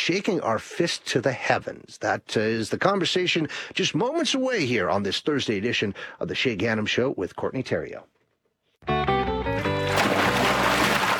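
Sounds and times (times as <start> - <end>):
speech: 0.0 - 8.2
water splashing and sloshing in a flooded basement: 9.6 - 11.1.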